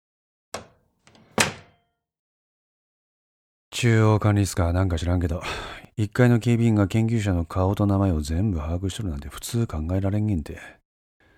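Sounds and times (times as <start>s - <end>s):
door opening with latch clicks: 0.6s - 1.8s
speech: 3.8s - 10.8s.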